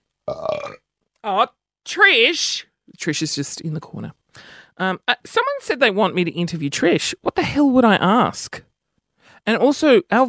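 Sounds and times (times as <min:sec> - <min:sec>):
loud rough gurgling burp: 0:00.2 - 0:00.9
speech: 0:01.2 - 0:08.7, 0:09.4 - 0:10.2.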